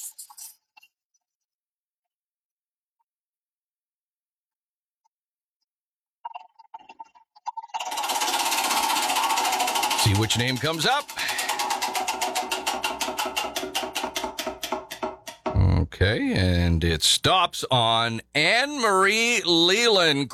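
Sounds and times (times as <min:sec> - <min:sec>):
digital prize wheel spinning with clicking ticks: 0:07.8 - 0:15.5
speech: 0:10.1 - 0:11.3, 0:16.0 - 0:20.3.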